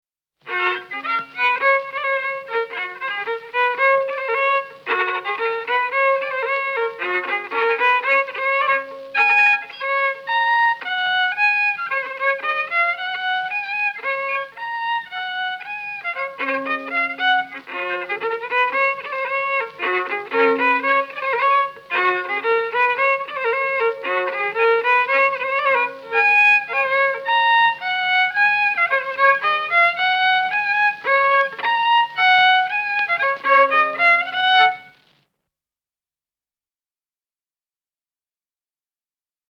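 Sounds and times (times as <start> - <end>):
violin playing a folk polka: 0.4 - 35.1.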